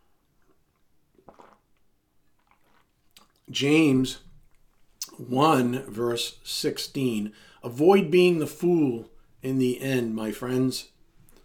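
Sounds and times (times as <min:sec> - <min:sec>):
pastor sipping water during a sermon: 0:00.0 - 0:03.6, 0:11.2 - 0:11.4
wet gulp of water: 0:00.3 - 0:03.5
speech: 0:03.5 - 0:04.3, 0:05.2 - 0:10.9.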